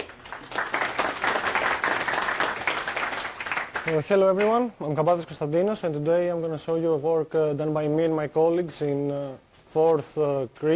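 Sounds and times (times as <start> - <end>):
audience applauding at a cloud-native technology talk: 0.0 - 4.1
speech: 3.9 - 10.7.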